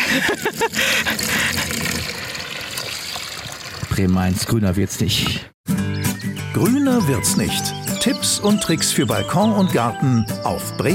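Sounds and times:
speech: 0.1s - 1.1s, 4.0s - 5.5s, 6.6s - 10.9s
water pouring into a mini pond container: 0.4s - 4.2s.

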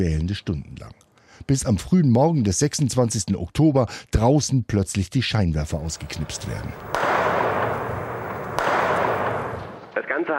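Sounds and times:
speech: 0.0s - 7.1s, 10.2s - 10.3s
explosions: 5.9s - 10.0s
machine gun fire: 5.9s - 10.0s.

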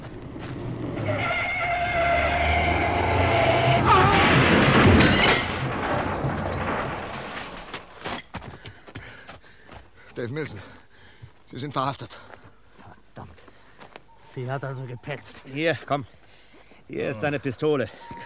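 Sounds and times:
car tires squealing in a long loud skid: 0.9s - 5.6s
car crashing into parked car, metal on metal: 0.9s - 8.2s
debris rattling and clattering: 3.9s - 8.5s
speech: 10.4s - 10.8s, 11.5s - 12.3s, 14.4s - 16.2s, 16.9s - 18.2s.

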